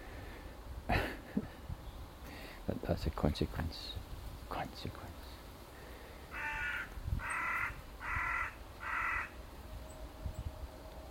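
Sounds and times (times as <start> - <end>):
faint outdoor noise: 0.0 - 11.0
speech: 2.7 - 5.4
crow cawing on a grey morning: 6.3 - 9.4.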